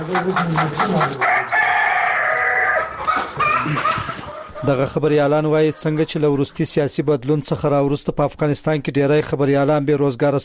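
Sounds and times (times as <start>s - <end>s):
hens clucking on a poultry farm in Ghazni, Afghanistan: 0.0s - 6.4s
speech: 0.1s - 1.5s, 4.6s - 10.4s
rooster crowing on a poultry farm in Ghazni, Afghanistan: 1.1s - 4.6s.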